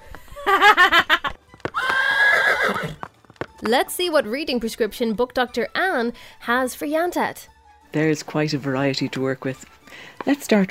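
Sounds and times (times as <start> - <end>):
laughter: 0.4 - 1.4
horse neighing: 1.7 - 3.1
speech: 3.7 - 10.7.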